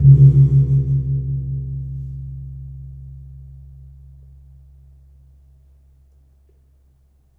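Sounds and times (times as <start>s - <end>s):
gamelan kempul gong struck hard: 0.0s - 3.6s.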